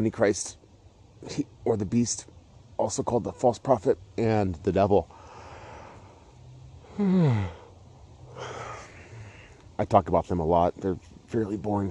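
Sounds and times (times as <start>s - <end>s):
speech: 0.0s - 0.6s, 1.2s - 5.2s, 7.0s - 7.6s, 9.8s - 11.8s
faint hum: 0.0s - 11.8s
breathy exhale: 5.1s - 6.2s, 6.8s - 9.6s
person yawning: 6.9s - 7.7s.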